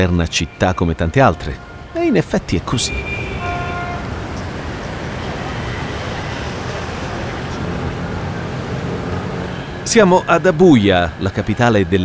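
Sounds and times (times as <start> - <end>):
speech: 0.0 - 3.3, 9.9 - 12.0
city traffic roar: 0.0 - 12.0
car horn blast: 2.8 - 4.4.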